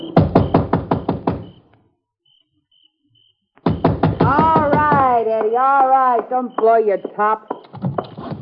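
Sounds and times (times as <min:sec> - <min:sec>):
sharp rapid knocking on the door of a dark country house: 0:00.0 - 0:01.6, 0:03.6 - 0:08.3
speech: 0:05.4 - 0:07.6.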